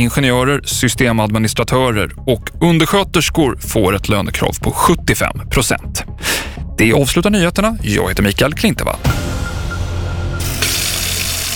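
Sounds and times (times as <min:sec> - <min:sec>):
speech: 0:00.0 - 0:09.4
water running from a tap: 0:10.4 - 0:11.5.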